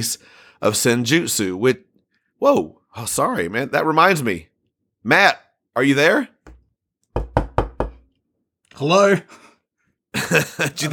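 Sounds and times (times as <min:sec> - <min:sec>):
speech: 0:00.0 - 0:06.3, 0:08.8 - 0:09.4, 0:10.1 - 0:10.9
knocking on a door: 0:06.5 - 0:08.1
laughter: 0:10.2 - 0:10.9.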